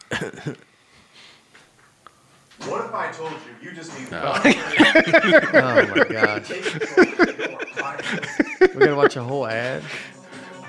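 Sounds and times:
TV game show audience member coughing: 0.0s - 0.6s
faint hiss: 0.0s - 10.6s
speech: 0.1s - 0.7s, 2.7s - 10.6s
laughter: 4.3s - 10.1s.

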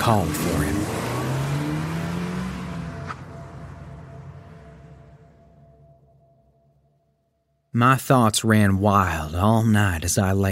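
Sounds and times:
parked car engine revving and driving away: 0.0s - 6.1s
speech: 0.1s - 0.9s, 7.8s - 10.4s.

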